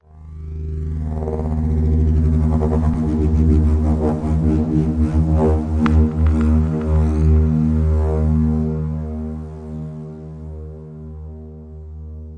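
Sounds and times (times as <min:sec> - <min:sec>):
approaching synth spinning down: 0:00.1 - 0:10.0.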